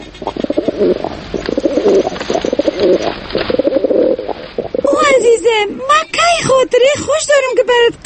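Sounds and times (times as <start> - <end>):
pigeon cooing: 0.0 - 5.5
speech: 5.6 - 8.0.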